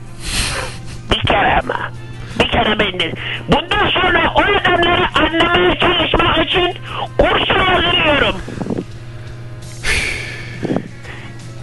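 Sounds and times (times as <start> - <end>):
faint breathy puff: 0.1 - 1.1, 9.7 - 11.5
person taking a sharp noisy breath: 0.2 - 1.0, 9.8 - 11.5
speech: 2.6 - 8.4.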